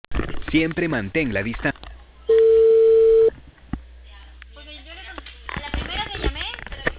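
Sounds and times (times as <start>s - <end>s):
speech: 0.5s - 2.4s
telephone call ringing unanswered: 2.3s - 3.3s.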